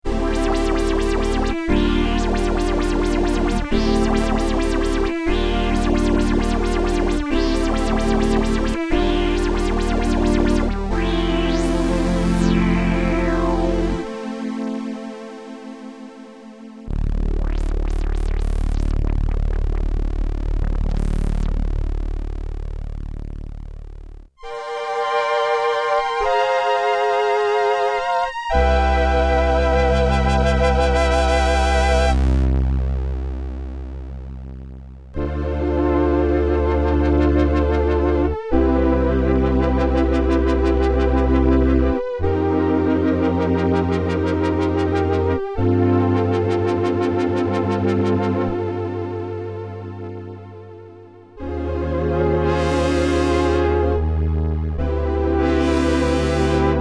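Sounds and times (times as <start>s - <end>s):
synthesizer mix with filter modulation: 0.0s - 56.7s.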